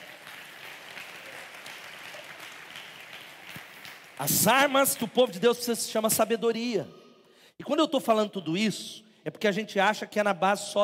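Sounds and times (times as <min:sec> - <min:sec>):
congregation applauding: 0:00.0 - 0:04.5
speech: 0:04.2 - 0:07.0, 0:07.6 - 0:10.8.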